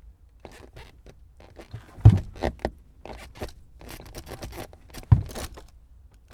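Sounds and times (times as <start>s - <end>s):
car gear shift: 1.6s - 5.7s.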